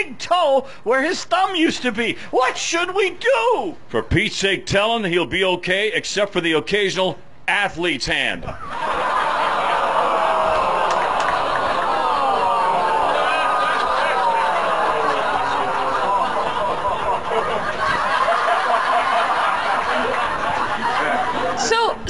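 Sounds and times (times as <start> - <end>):
speech: 0.0 - 9.0
laughter: 8.5 - 22.0
large audience yelling a drawn-out name: 9.6 - 16.4.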